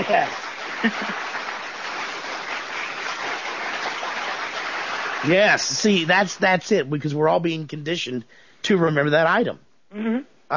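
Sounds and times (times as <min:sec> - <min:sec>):
crowd clapping: 0:00.0 - 0:06.7
speech: 0:00.1 - 0:01.3, 0:05.2 - 0:10.5.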